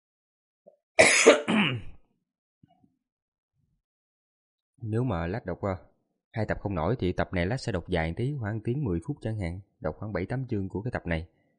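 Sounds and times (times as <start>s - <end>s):
rough throaty coughs from an unwell adult: 1.0s - 2.0s
speech: 1.2s - 1.6s, 4.8s - 11.4s.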